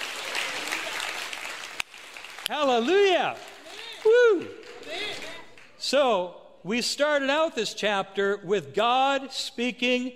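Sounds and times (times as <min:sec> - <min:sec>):
crowd applauding: 0:00.0 - 0:05.8
speech: 0:02.5 - 0:10.1.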